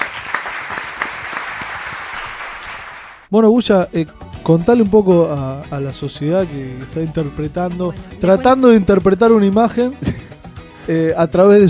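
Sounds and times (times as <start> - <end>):
audience applause welcoming a guest at a live show: 0.0 - 3.3
speech: 3.3 - 10.2, 10.9 - 11.6.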